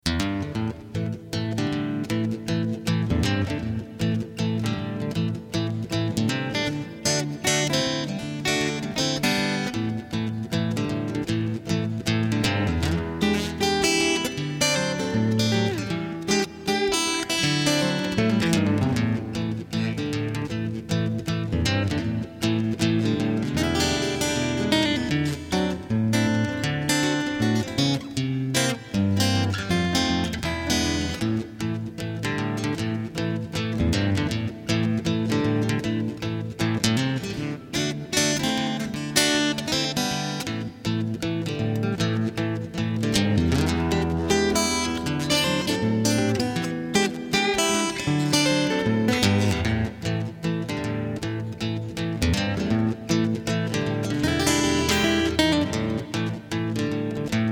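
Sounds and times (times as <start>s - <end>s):
acoustic blues music: 0.0s - 57.5s.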